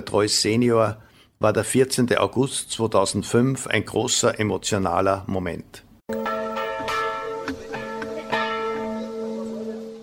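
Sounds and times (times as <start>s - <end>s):
speech: 0.0s - 5.9s
church bells ringing in an overlapping peal: 6.1s - 10.0s.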